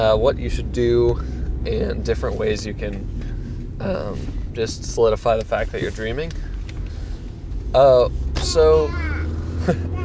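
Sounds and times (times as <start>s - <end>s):
speech: 0.0s - 6.5s, 7.7s - 9.9s
low rumble of a moving car cabin: 0.0s - 10.0s.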